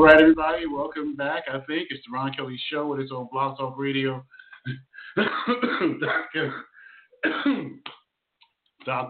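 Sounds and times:
speech: 0:00.1 - 0:08.0, 0:08.8 - 0:09.0
person coughing harshly: 0:04.7 - 0:07.8.

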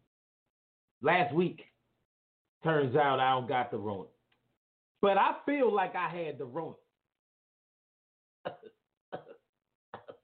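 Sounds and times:
speech: 0:01.0 - 0:01.7, 0:02.6 - 0:04.1, 0:05.0 - 0:06.8, 0:08.4 - 0:09.4
harsh coughing: 0:08.4 - 0:10.2.

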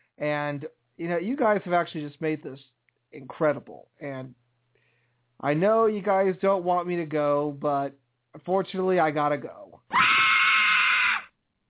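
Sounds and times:
speech: 0:00.2 - 0:04.4, 0:05.4 - 0:10.2
single loud shrill scream: 0:09.9 - 0:11.3.

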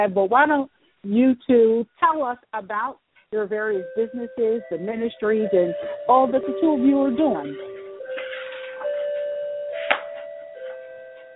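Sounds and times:
speech: 0:00.0 - 0:07.7
clock bell chiming the hour: 0:03.8 - 0:11.3.

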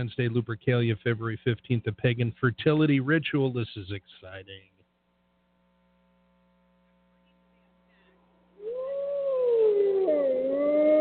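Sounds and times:
speech: 0:00.0 - 0:04.7
wolf howling: 0:08.6 - 0:10.9.

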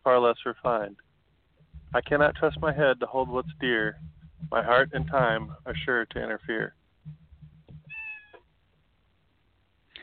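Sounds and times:
speech: 0:00.0 - 0:01.1, 0:01.9 - 0:07.2
low rumble: 0:01.1 - 0:08.0
pet cat meowing: 0:07.9 - 0:08.4.

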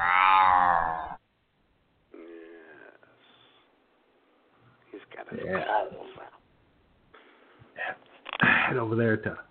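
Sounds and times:
voice imitating a cat's meow with throaty cries: 0:00.0 - 0:01.2
speech: 0:05.2 - 0:06.4, 0:08.7 - 0:09.5.

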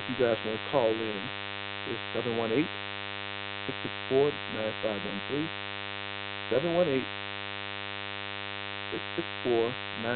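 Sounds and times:
garbled distorted noise bursts: 0:00.0 - 0:02.7, 0:03.7 - 0:05.5, 0:06.5 - 0:07.1, 0:08.9 - 0:10.1
electrical static hum on a telephone line: 0:00.0 - 0:10.1
speech: 0:00.1 - 0:02.9, 0:03.7 - 0:05.7, 0:06.5 - 0:07.2, 0:08.9 - 0:10.1.

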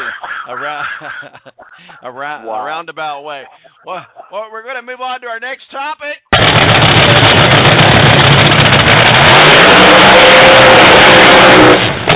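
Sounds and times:
laughter: 0:00.0 - 0:04.6
speech: 0:00.5 - 0:07.4
racing car engine revving at Indianapolis: 0:06.4 - 0:12.1.

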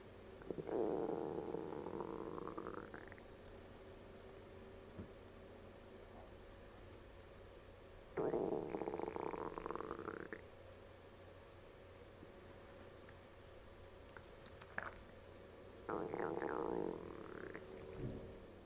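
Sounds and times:
quiet hiss: 0:00.0 - 0:18.6
low gurgling stomach rumbling with rising squeaky tones: 0:00.4 - 0:03.3, 0:08.2 - 0:10.5, 0:14.1 - 0:15.2, 0:15.9 - 0:18.4.

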